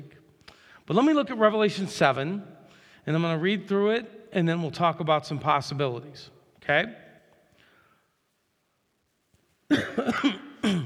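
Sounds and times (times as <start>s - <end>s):
speech: 0.9s - 2.5s, 3.1s - 7.0s, 9.7s - 10.4s
person coughing into a microphone: 9.7s - 10.8s.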